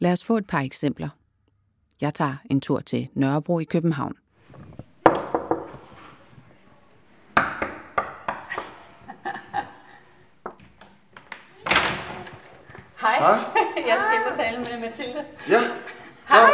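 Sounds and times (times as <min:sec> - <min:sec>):
speech: 0:00.0 - 0:01.2, 0:02.0 - 0:04.2, 0:13.2 - 0:16.5
sharp hollow knocks on a nursery door in an old ground-floor apartment in Nørrebro: 0:05.0 - 0:05.8, 0:07.4 - 0:08.7
laughter: 0:08.4 - 0:10.2, 0:12.7 - 0:16.5.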